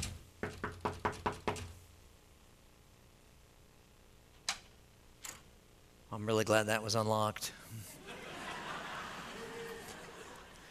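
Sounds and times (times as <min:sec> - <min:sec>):
knocking on a door: 0:00.0 - 0:01.7
speech: 0:06.1 - 0:07.9
laughter: 0:07.9 - 0:10.6.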